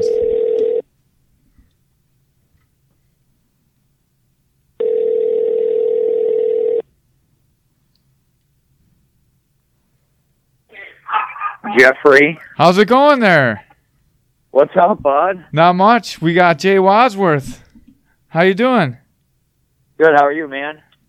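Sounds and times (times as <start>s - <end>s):
phone line ringback tone: 0.0s - 0.8s, 4.8s - 6.8s
speech: 11.8s - 13.6s, 14.6s - 17.6s, 18.3s - 19.0s, 20.0s - 21.0s.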